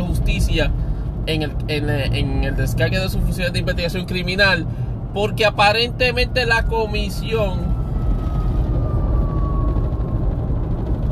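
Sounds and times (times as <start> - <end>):
loud rumble of traffic: 0.0 - 11.1
wind: 0.0 - 11.1
speech: 0.3 - 7.7
emergency vehicle siren passing: 5.0 - 11.1.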